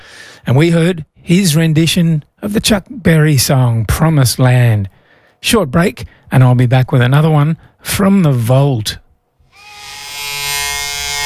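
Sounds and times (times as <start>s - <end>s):
speech: 0.4s - 9.0s
Remington electric razor shaving: 9.5s - 11.2s.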